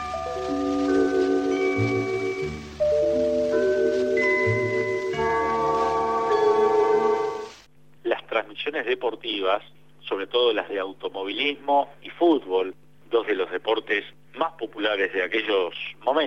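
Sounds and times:
radio station identification gong from 1950s-60s Argentina: 0.0 - 7.5
speech: 1.8 - 2.1, 8.8 - 16.2.

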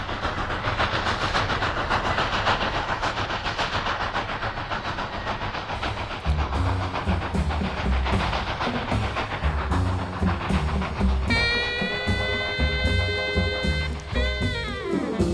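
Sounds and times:
train passing on rails: 0.0 - 15.3.

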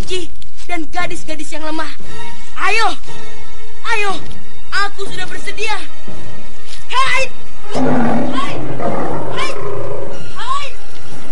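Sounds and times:
speech: 0.1 - 9.1
tiger nearly as big as a calf roaring: 7.6 - 10.4.

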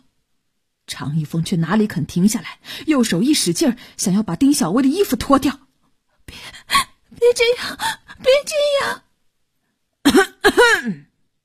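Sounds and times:
speech: 1.0 - 5.6, 6.3 - 9.0, 10.1 - 11.1
person coughing deliberately with a throat-clearing quality: 10.1 - 11.1.

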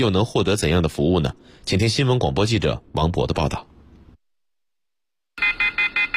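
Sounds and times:
speech: 0.0 - 3.7
high-pitched beeps from a networked smoke alarm system: 5.4 - 6.1.

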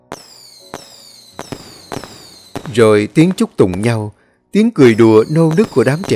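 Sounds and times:
high whistling tail of fireworks sliding downward in pitch: 0.0 - 2.7, 5.0 - 6.1
New Year fireworks bursting: 0.0 - 4.1, 4.8 - 6.1
speech: 2.7 - 6.1.

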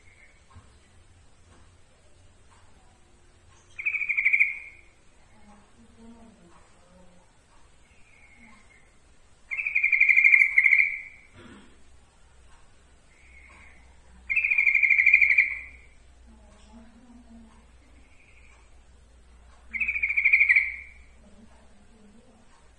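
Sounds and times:
Yellow-vented bulbul song with buzzy trilled phrases: 3.4 - 6.1, 7.8 - 11.3, 13.1 - 16.0, 19.6 - 21.3.

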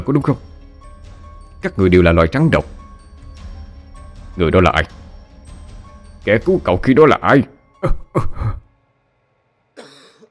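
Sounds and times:
speech: 0.0 - 0.5, 1.6 - 2.8, 4.4 - 5.0, 6.2 - 8.6
old man with asthma-like wheezing breath coughing: 7.8 - 8.7, 9.8 - 10.2.

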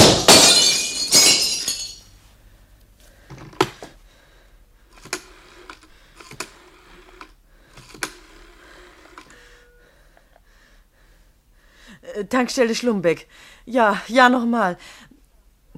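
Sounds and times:
window glass breaking: 0.0 - 2.0
falling glass shards clinking: 0.0 - 2.1
speech: 12.2 - 15.1.

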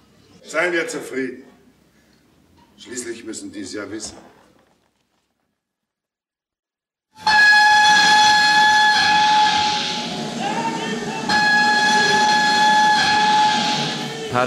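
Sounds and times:
speech: 0.5 - 1.5, 2.8 - 4.4
steam train whistle at a Paris railway station: 7.2 - 14.4.

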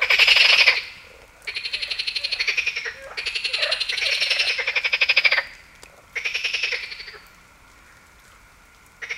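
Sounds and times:
Marsh frog cackling rattles in Heviz, Hungary: 0.0 - 5.6, 6.2 - 7.2, 9.0 - 9.1.

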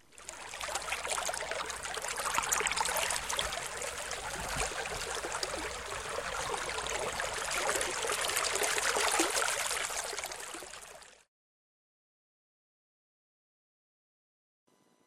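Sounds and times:
rippling river water: 0.0 - 11.3.

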